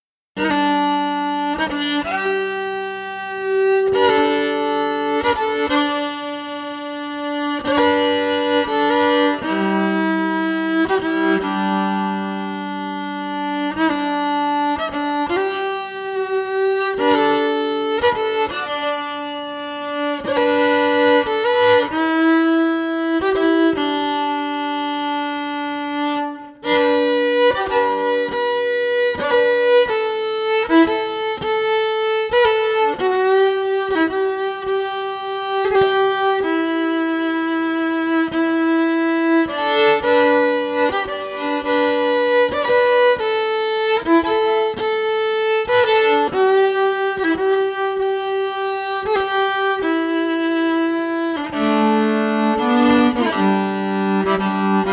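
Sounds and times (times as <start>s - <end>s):
electric fiddle: 0.0s - 54.9s.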